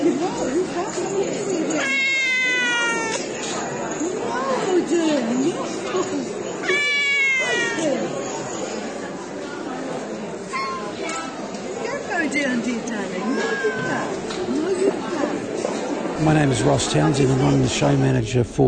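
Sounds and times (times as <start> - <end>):
busy indoor crowd murmuring and chattering at a cat show: 0.0 - 18.6
cat meowing at a cat show: 1.7 - 3.3, 6.6 - 8.1, 13.3 - 14.3
speech: 16.3 - 18.6.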